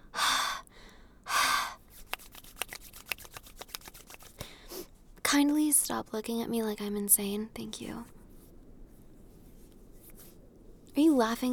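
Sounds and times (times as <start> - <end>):
forceful breaths blown onto cold fingers to warm them: 1.3 - 4.9
rustling: 1.8 - 5.3, 8.0 - 11.0
speech: 5.3 - 8.2, 11.0 - 11.5.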